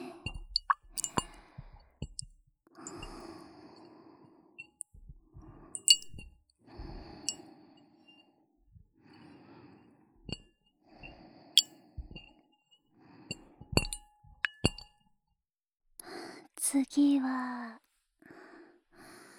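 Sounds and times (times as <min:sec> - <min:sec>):
glass container clinking: 0:00.3 - 0:01.4, 0:05.8 - 0:06.2, 0:13.8 - 0:14.9
water sloshing and plopping: 0:00.3 - 0:01.4, 0:05.8 - 0:06.2
speech: 0:16.7 - 0:17.8.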